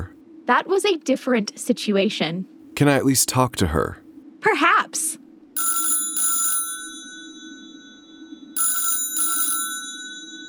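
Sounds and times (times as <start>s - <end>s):
speech: 0.0s - 5.2s
low steady hum: 0.0s - 10.4s
bright electronic double telephone rings from a computer call: 5.6s - 10.4s.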